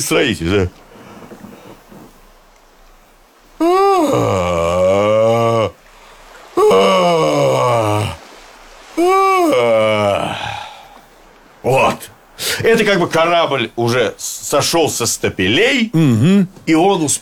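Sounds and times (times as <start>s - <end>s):
speech: 0.0s - 0.8s, 12.7s - 17.2s
long exaggerated human yawning: 3.6s - 5.8s, 6.6s - 8.2s, 9.0s - 11.0s.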